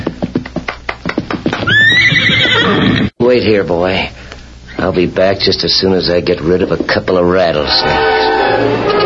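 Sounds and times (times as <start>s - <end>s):
horse hoofbeats: 0.0s - 3.1s
horse whinnying as rider reins it up: 1.6s - 3.1s
speech: 3.3s - 4.2s, 4.8s - 8.9s.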